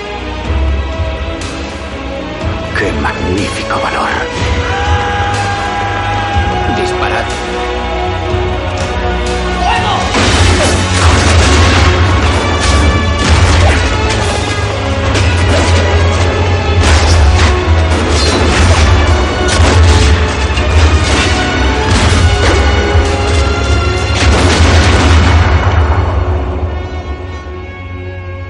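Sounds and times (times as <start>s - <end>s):
music playing: 0.0s - 28.4s
speech: 3.0s - 4.8s
volley of musket fire from guards: 10.1s - 26.5s.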